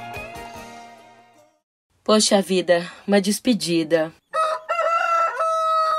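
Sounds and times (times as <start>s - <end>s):
speech: 2.1s - 4.2s
rooster crowing: 4.3s - 5.9s.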